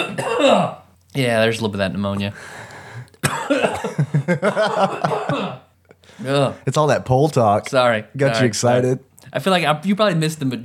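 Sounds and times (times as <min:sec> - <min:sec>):
person coughing in a loud fit: 0:00.0 - 0:00.8, 0:03.2 - 0:05.8
speech: 0:00.0 - 0:10.6.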